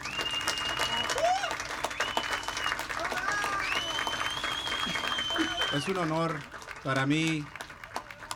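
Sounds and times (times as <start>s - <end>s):
whistles from the audience: 0.0s - 2.9s, 3.5s - 5.9s
sustained applause from a sizable crowd: 0.0s - 8.3s
speech: 5.8s - 7.6s.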